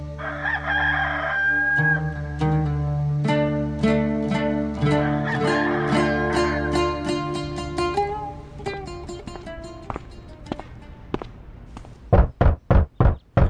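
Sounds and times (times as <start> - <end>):
soft sustained music: 0.0 - 11.2
knocking on a hotel room door: 12.1 - 13.4.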